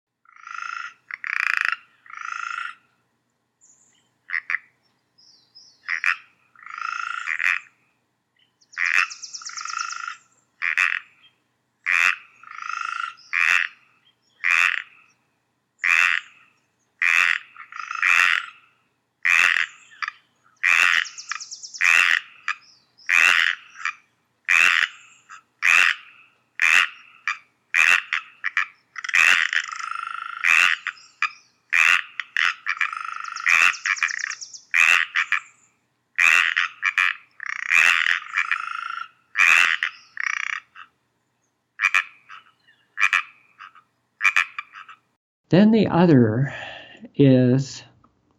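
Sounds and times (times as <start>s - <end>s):
dense chorus of Pacific chorus frogs croaking: 0.2s - 2.9s, 4.3s - 4.8s, 5.8s - 7.8s, 8.7s - 11.2s, 11.8s - 15.2s, 15.8s - 35.6s, 36.2s - 41.0s, 41.8s - 45.0s
speech: 45.5s - 46.6s, 47.2s - 47.9s.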